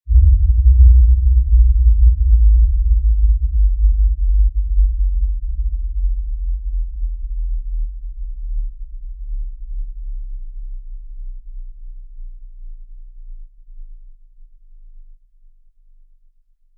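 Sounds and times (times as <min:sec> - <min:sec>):
low frequency impact tremor descending in pitch: 0:00.1 - 0:06.7.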